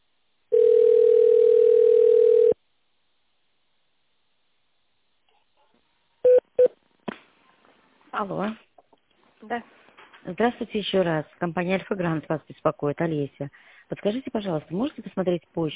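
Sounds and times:
long steady telephone tone on a call to an automated phone line: 0.5s - 2.6s, 6.2s - 6.8s
speech: 8.2s - 8.7s, 9.4s - 15.7s.

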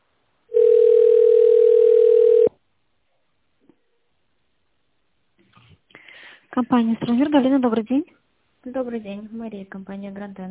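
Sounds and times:
steady telephone tone during call transfer: 0.5s - 2.6s
speech: 6.6s - 10.5s.

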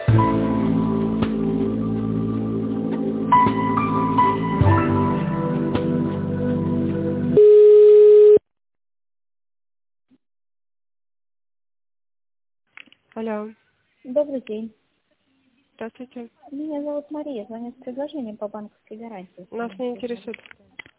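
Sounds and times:
electronic hold music over a telephone line during call transfer: 0.1s - 7.4s
single loud steady telephone line tone: 7.4s - 8.4s
speech: 14.2s - 14.8s, 15.8s - 20.6s.

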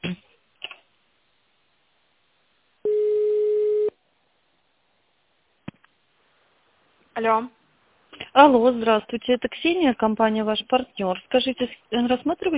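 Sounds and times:
telephone line tone while a call is transferred: 2.9s - 3.9s
speech: 7.2s - 7.6s, 8.4s - 12.5s.

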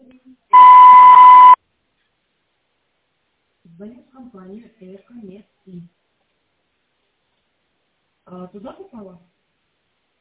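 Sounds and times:
voicemail beep before recording a message: 0.5s - 1.6s
speech: 3.8s - 6.0s, 8.3s - 9.3s.

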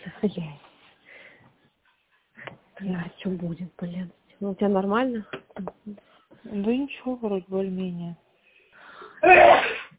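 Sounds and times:
speech: 0.2s - 0.6s, 2.8s - 8.2s
person with a sore rasping throat sneezing: 9.2s - 9.9s.

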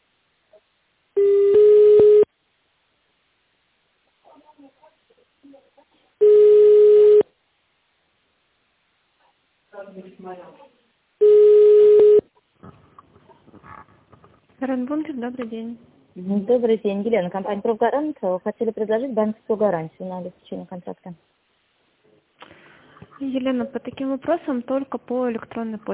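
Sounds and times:
telephone ringback tones while a call is transferred to an operator: 1.2s - 2.3s, 6.2s - 7.2s, 11.2s - 12.2s
speech: 10.0s - 10.7s, 14.6s - 21.4s, 23.2s - 25.9s.

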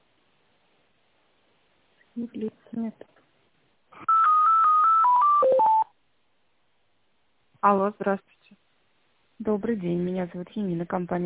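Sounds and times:
speech: 2.2s - 3.3s, 7.6s - 8.4s, 9.4s - 11.2s
touch-tone telephone dialing beeps while a call is being transferred: 4.1s - 5.9s.

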